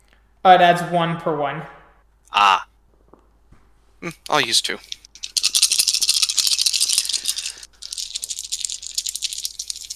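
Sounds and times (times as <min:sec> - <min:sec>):
speech: 0:00.4 - 0:02.6, 0:04.0 - 0:05.0
dice rattling shaken in a hand or cup: 0:04.3 - 0:09.9.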